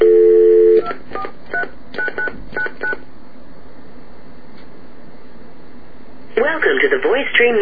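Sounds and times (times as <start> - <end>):
steady telephone dial tone: 0.0 - 0.9
speech: 6.5 - 7.6.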